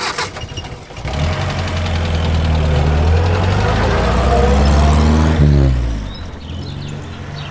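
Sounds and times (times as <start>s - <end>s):
car engine cranking and catching: 0.0s - 7.4s.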